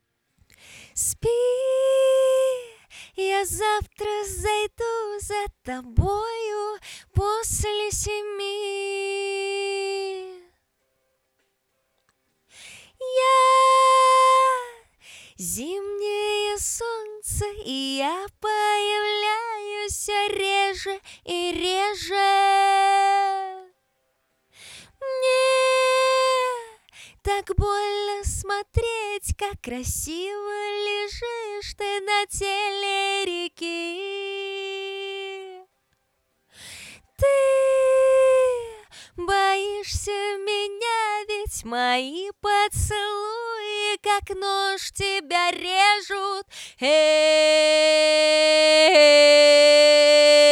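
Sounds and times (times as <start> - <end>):
female vocal through Radiosistema Oktava OWS U1200H: 0.6 - 10.6, 12.6 - 23.7, 25.0 - 35.7, 36.8 - 50.5.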